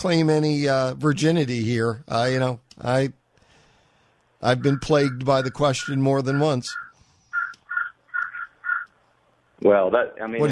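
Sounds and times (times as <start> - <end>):
speech: 0.0 - 3.2, 4.4 - 6.8, 9.6 - 10.4
bird squawking: 4.4 - 9.0.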